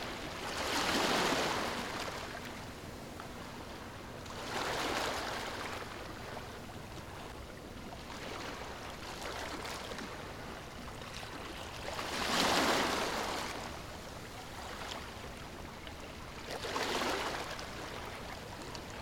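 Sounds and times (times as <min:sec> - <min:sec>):
waves breaking on a sandy shore: 0:00.0 - 0:02.7, 0:03.5 - 0:06.5, 0:08.0 - 0:13.7, 0:16.0 - 0:19.0
steady low wash of water: 0:00.0 - 0:19.0.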